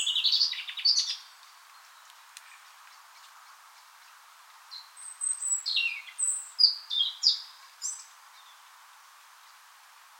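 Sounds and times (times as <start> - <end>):
European robin singing, Erithacus rubecula: 0.0 - 2.7, 4.7 - 8.7.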